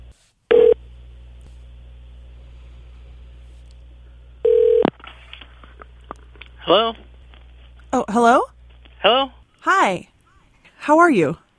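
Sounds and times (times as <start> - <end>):
low steady hum on a phone line: 0.0 - 11.5
telephone ringback tone over a phone line: 0.5 - 0.8, 4.4 - 4.9
speech: 6.6 - 7.1, 7.9 - 10.1, 10.9 - 11.4.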